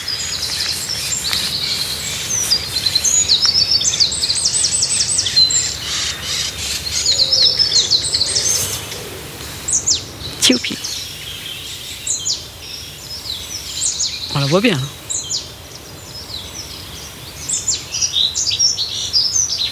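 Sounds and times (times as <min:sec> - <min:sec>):
steady outdoor hiss: 0:00.0 - 0:19.7
speech: 0:10.7 - 0:10.9, 0:14.4 - 0:15.0
dunnock singing a warbling song: 0:14.3 - 0:15.0.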